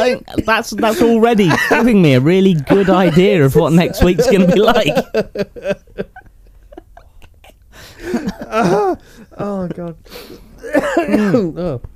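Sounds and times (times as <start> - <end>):
speech: 0.0 - 6.1, 8.0 - 11.9
laughter: 0.8 - 10.1
person coughing brought on by laughing: 10.6 - 11.8.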